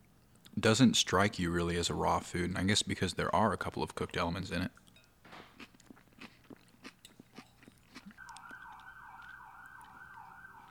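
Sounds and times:
speech: 0.6 - 4.8
crunchy chewing: 4.8 - 10.6
wailing emergency vehicle siren passing: 8.2 - 10.6.

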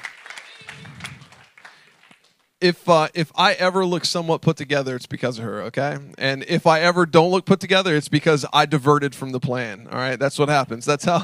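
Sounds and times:
audience applauding: 0.0 - 2.5
speech: 2.6 - 11.2.

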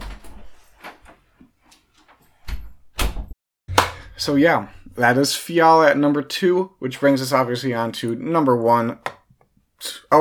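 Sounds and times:
door being opened with clunks and rattles: 2.5 - 4.0
speech: 4.2 - 9.1.

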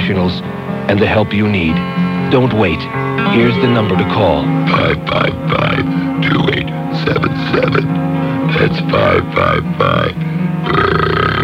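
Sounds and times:
speech: 0.1 - 11.2
loud drawn-out belch: 7.2 - 7.9, 9.2 - 11.4.

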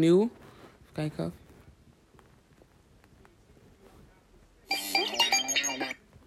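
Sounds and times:
speech: 0.0 - 0.4, 1.0 - 1.4
electronic text message notification tone on a phone: 4.7 - 6.0.

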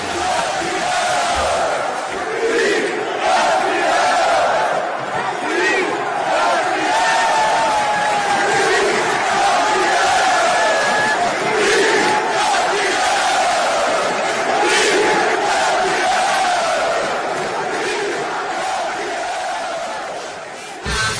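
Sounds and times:
football fans chanting in celebration: 0.0 - 21.0.

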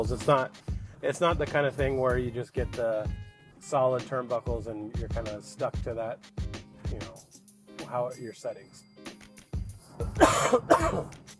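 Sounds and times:
speech: 0.0 - 7.3, 7.9 - 8.9, 10.2 - 11.2
raspy harsh coughs: 10.0 - 11.2.

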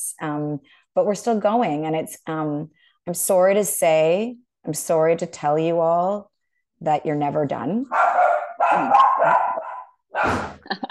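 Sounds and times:
speech: 0.0 - 10.8
several dogs barking: 7.9 - 10.5.

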